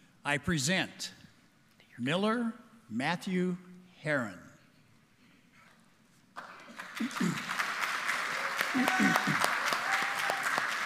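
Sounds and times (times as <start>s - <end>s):
speech: 0.2s - 1.2s, 2.0s - 4.4s, 7.0s - 7.6s, 8.7s - 9.5s
crowd applauding: 6.4s - 10.8s
scattered whoops and cheers: 8.3s - 10.8s.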